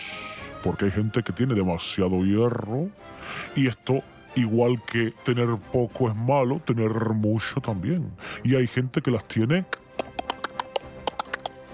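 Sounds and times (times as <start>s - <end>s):
speech: 0.6s - 9.8s
scissors snipping: 9.8s - 11.6s.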